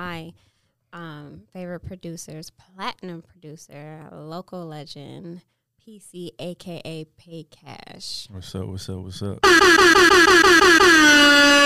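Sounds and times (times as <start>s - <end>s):
speech: 0.1s - 11.6s
air horn blasts: 9.4s - 11.6s.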